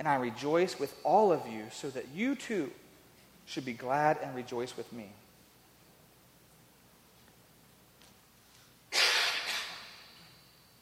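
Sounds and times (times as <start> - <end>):
speech: 0.0 - 2.8, 3.5 - 5.2
single sharp breathy cough: 8.9 - 10.1.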